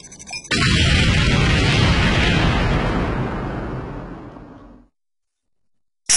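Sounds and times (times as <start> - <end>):
comic acoustic bomb launching with a roaring explosion-like burst: 0.5 - 4.9.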